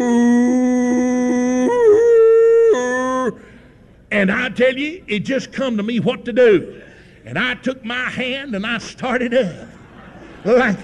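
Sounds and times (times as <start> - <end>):
human voice imitating old plot hounds howling off-key: 0.0 - 3.4
speech: 4.1 - 9.8, 10.4 - 10.8
laughter: 9.2 - 10.8.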